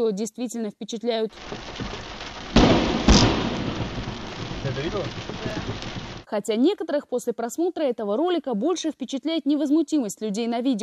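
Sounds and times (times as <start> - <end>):
speech: 0.0 - 2.0, 4.8 - 10.8
steady rain: 1.3 - 6.3
thunder cracks from lightning striking: 1.3 - 6.3.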